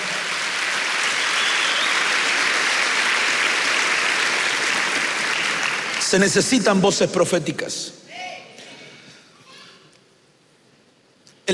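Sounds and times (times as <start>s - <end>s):
audience clapping hands: 0.0s - 6.7s
speech: 6.1s - 8.0s.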